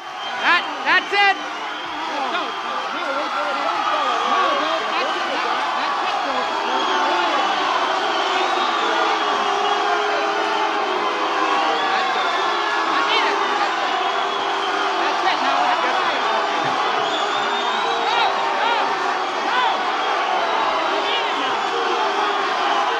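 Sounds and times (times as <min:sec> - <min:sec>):
large concert crowd booing and jeering: 0:00.0 - 0:22.9.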